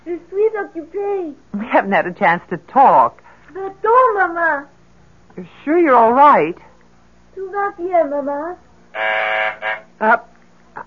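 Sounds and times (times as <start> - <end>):
speech: 0.0 - 4.8, 5.4 - 6.7, 7.4 - 10.8
phone buzzer sounding from downstairs in an apartment: 8.9 - 10.0.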